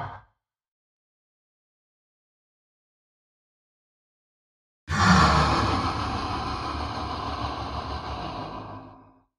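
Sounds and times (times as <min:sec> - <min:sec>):
cartoon monster: 0:04.9 - 0:09.0.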